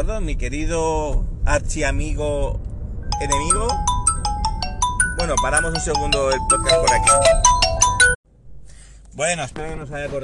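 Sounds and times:
speech: 0:00.0 - 0:04.0, 0:05.2 - 0:07.6, 0:09.2 - 0:10.2
phone ringtone for incoming call chiming: 0:03.1 - 0:08.2.

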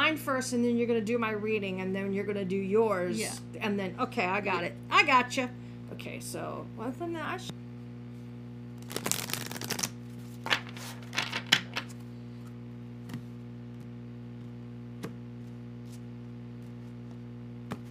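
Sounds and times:
speech: 0:00.3 - 0:07.6
tarot cards being shuffled: 0:08.8 - 0:12.1, 0:15.4 - 0:17.8
tarot deck taps and flicks: 0:13.0 - 0:13.9, 0:17.7 - 0:17.8.

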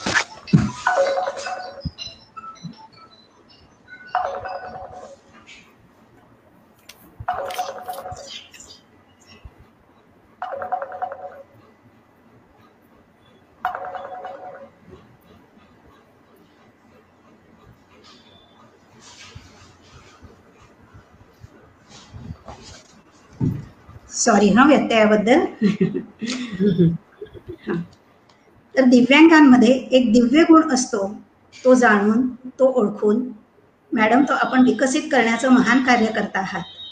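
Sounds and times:
telephone ringing: 0:00.3 - 0:02.8, 0:03.9 - 0:05.3, 0:07.2 - 0:08.6, 0:10.4 - 0:11.8, 0:13.6 - 0:15.1
speech: 0:24.2 - 0:27.0, 0:28.9 - 0:33.3, 0:34.0 - 0:36.8
laughter: 0:25.6 - 0:28.0.

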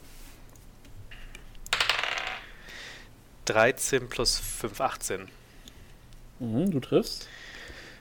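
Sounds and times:
dice tumbling and clattering across a hard tabletop: 0:01.7 - 0:02.5
speech: 0:03.5 - 0:05.4, 0:06.4 - 0:07.5.

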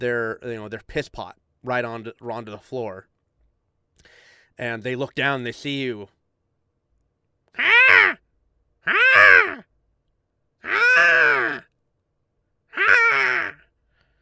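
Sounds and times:
speech: 0:00.0 - 0:03.1, 0:04.0 - 0:06.2, 0:07.6 - 0:08.2, 0:08.8 - 0:09.4
human voice imitating a squawking bird: 0:07.6 - 0:08.2, 0:08.8 - 0:09.7, 0:10.6 - 0:11.7, 0:12.7 - 0:13.7.

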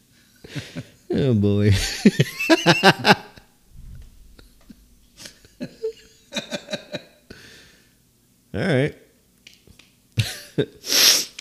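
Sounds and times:
speech: 0:01.2 - 0:03.2
laughter: 0:01.7 - 0:03.4, 0:05.2 - 0:07.2
sniffle with nasal snorts and hissy inhale through the nose: 0:10.8 - 0:11.3.

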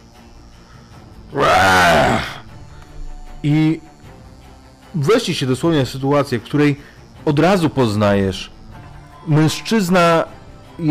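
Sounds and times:
speech: 0:01.3 - 0:02.3, 0:03.4 - 0:03.9, 0:05.0 - 0:08.5, 0:09.2 - 0:10.8
man letting out a loud strained scream: 0:01.3 - 0:02.4.

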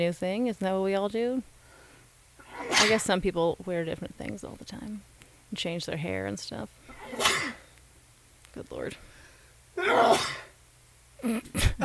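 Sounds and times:
speech: 0:00.0 - 0:01.6, 0:02.6 - 0:07.6, 0:08.6 - 0:09.1, 0:09.8 - 0:10.4, 0:11.2 - 0:11.8
person sneezing: 0:02.4 - 0:03.0, 0:06.9 - 0:07.7, 0:09.8 - 0:10.5, 0:11.2 - 0:11.8.

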